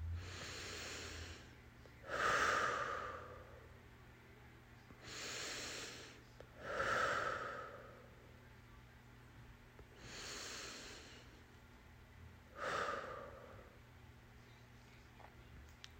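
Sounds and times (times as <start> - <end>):
slow deep breathing in meditation exercise: 0.0 - 3.8, 5.0 - 8.2, 9.9 - 11.5, 12.5 - 13.9.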